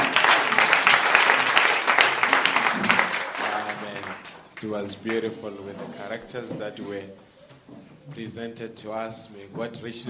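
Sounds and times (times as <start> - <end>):
church congregation applauding: 0.0 - 5.3
speech: 4.6 - 7.3, 8.1 - 10.0.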